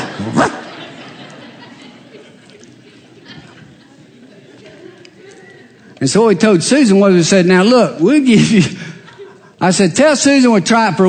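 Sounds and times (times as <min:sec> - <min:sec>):
laughter: 0:00.0 - 0:06.0, 0:08.3 - 0:09.9
low steady murmur: 0:00.0 - 0:06.4
person on all fours imitating a dog bark: 0:00.2 - 0:00.6
speech: 0:00.2 - 0:00.6, 0:06.0 - 0:08.8, 0:09.6 - 0:11.0.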